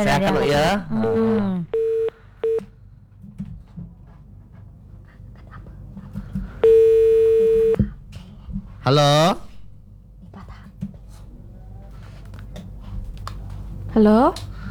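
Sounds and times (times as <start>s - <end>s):
speech: 0.0s - 1.7s, 8.8s - 9.4s, 14.0s - 14.6s
rapid chirp of phone line connecting for incoming call: 1.0s - 2.6s, 6.6s - 7.8s
short electronic beeps of phone line: 1.8s - 2.6s, 6.6s - 7.8s.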